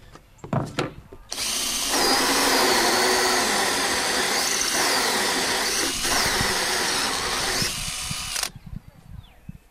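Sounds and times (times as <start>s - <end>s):
power drill boring a hole in a beehive: 1.3s - 8.5s.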